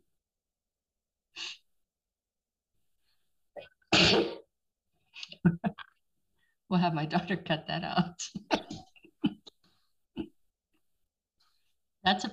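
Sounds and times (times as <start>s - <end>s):
person sneezing: 3.9s - 4.5s
speech: 6.7s - 8.5s, 12.1s - 12.3s.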